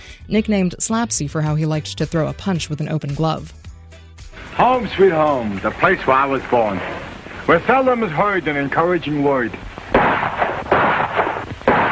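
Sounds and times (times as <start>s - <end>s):
speech: 0.3s - 3.6s, 4.6s - 9.7s
gunshots: 9.8s - 11.9s.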